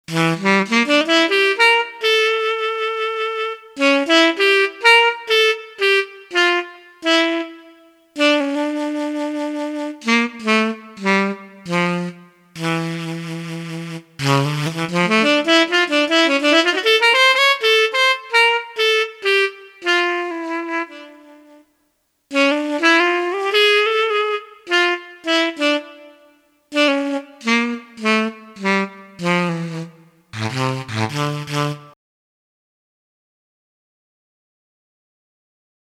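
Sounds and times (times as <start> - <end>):
moody saxophone: 0.1 - 21.7, 22.3 - 32.0.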